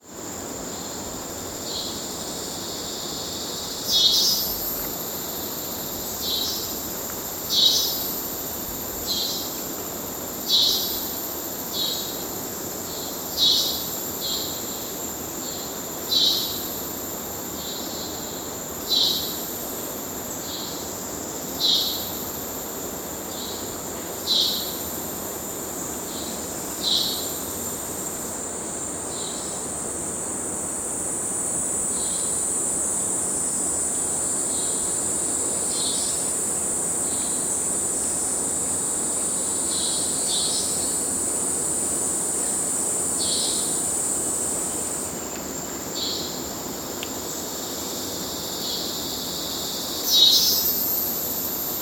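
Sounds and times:
cicada insects in the Amazon rainforest: 0.0s - 51.8s.

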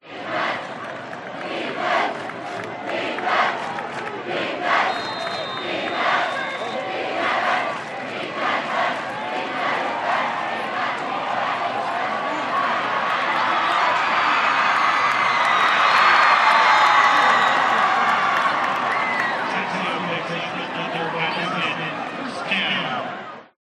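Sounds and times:
American football crowd chanting defense: 0.0s - 23.5s
American football crowd screaming: 4.7s - 7.6s, 9.6s - 23.4s.

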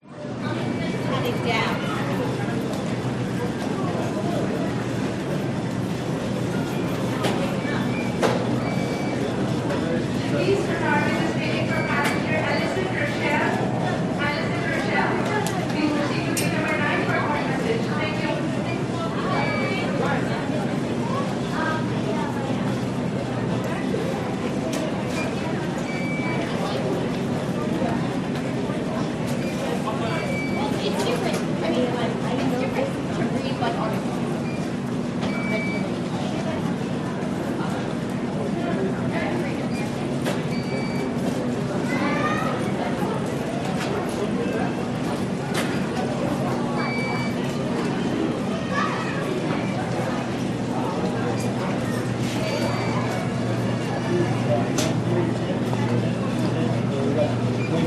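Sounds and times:
busy crowd walla in JFK airport: 0.0s - 57.8s.

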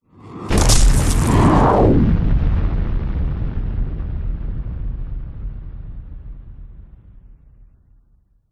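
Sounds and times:
whoosh: 0.2s - 2.8s
explosion: 0.3s - 7.8s
debris falling: 0.5s - 1.6s
cinematic hit: 0.5s - 6.6s.

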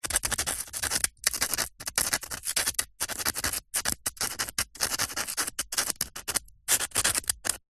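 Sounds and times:
ballpoint pen trying to write on a brick: 0.0s - 7.6s.

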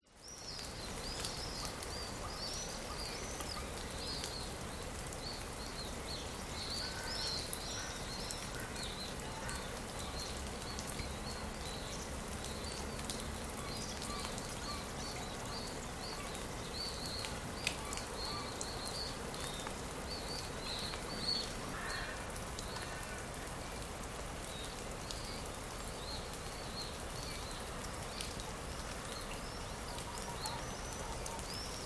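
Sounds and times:
birds in a spring forest in Cyprus: 0.1s - 31.8s
water drips in a wet misty spring forest in Cyprus: 0.1s - 31.8s
crows in a spring forest in Cyprus: 6.8s - 8.8s, 21.7s - 23.3s.

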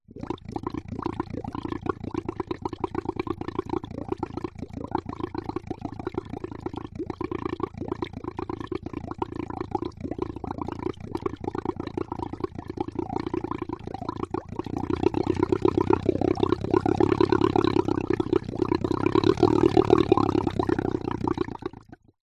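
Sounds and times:
bubbles: 0.0s - 22.2s
boat engine motor idling: 14.7s - 21.3s.

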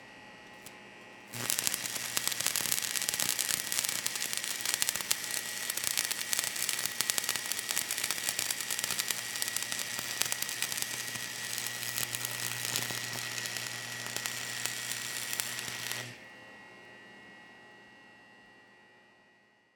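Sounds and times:
welder run sparks: 0.6s - 16.2s.

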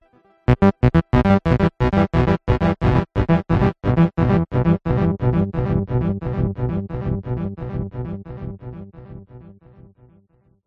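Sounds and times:
sci-fi space synth melody sting: 0.5s - 9.3s.

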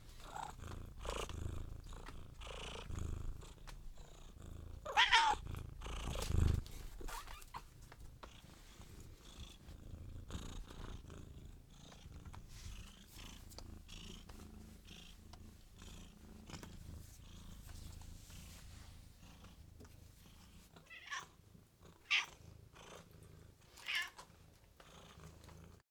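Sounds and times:
house cat purring: 0.0s - 25.8s
house cat meowing: 4.9s - 5.4s, 20.9s - 21.3s, 22.1s - 22.3s, 23.8s - 24.2s.

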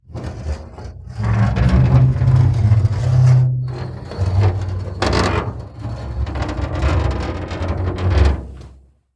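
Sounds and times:
metal moaning: 0.1s - 8.5s
metal squeaking: 1.6s - 7.6s.

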